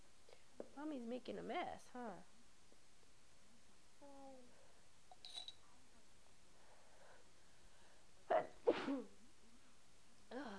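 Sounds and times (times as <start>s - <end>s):
speech: 0.8s - 2.3s, 8.9s - 9.2s
mother sneezing while feeding her child: 8.3s - 9.2s.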